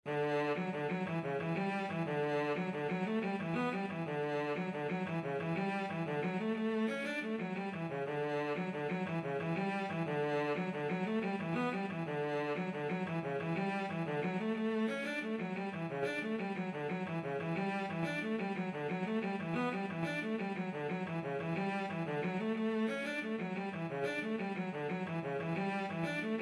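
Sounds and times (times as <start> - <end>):
cello playing a rolling jig: 0.1 - 26.4.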